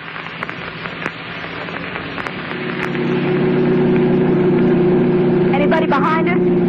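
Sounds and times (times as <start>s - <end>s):
rushing road or wind noise: 0.0s - 6.6s
speeding car engine droning at about 90 with accelerator halfway down: 0.0s - 6.6s.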